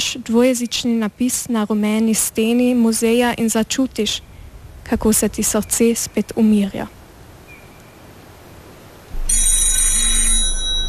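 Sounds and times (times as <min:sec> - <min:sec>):
speech: 0:00.1 - 0:04.3, 0:04.9 - 0:07.0
telephone ringing with a bright continuous bell tone: 0:09.2 - 0:10.8.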